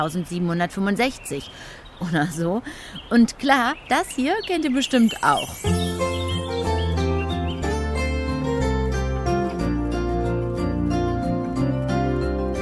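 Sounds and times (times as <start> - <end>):
speech: 0.0 - 6.0
chirping birdsong: 0.0 - 9.0
bright cheerful children's TV theme jingle: 5.1 - 12.5.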